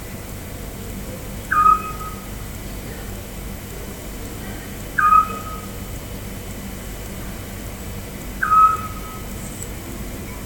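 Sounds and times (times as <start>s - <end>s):
Eurasian scops owl Otus scops whistled call: 1.5s - 2.2s, 5.0s - 5.7s, 8.4s - 9.3s.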